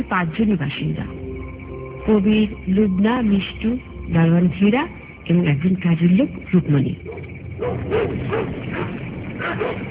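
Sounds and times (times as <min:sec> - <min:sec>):
speech: 0:00.0 - 0:01.2, 0:02.0 - 0:09.8
one or two dogs barking and yipping in the distance at night around a house: 0:07.0 - 0:09.8.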